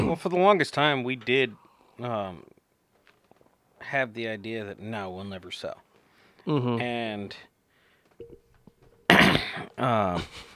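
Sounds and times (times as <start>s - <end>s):
speech: 0.1s - 2.6s, 3.8s - 7.5s, 8.2s - 8.4s, 9.5s - 10.5s
person coughing harshly into microphone: 9.0s - 9.8s.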